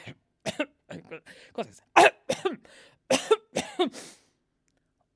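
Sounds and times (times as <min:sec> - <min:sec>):
person with a cough coughing in sharp bursts: 0:00.0 - 0:01.2, 0:02.0 - 0:04.1
speech: 0:01.2 - 0:01.9.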